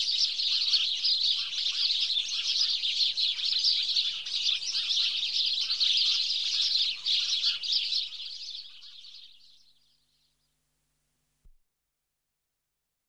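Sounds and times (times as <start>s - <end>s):
house sparrows Passer Domesticus chirping: 0.0s - 9.8s.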